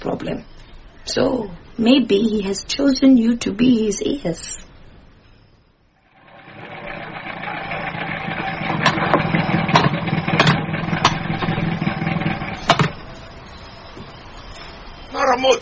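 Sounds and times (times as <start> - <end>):
speech: 0.0 - 4.7, 15.4 - 15.6
sharp rattling knocks and clicks from a van engine: 6.1 - 13.3
van engine running at a rough droning idle: 6.1 - 13.5.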